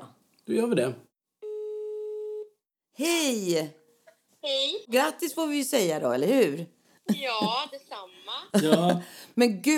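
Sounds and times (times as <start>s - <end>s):
speech: 0.5s - 1.1s, 3.0s - 3.8s, 4.4s - 9.7s
telephone call ringing tone: 1.4s - 2.5s
laughter: 8.5s - 9.1s.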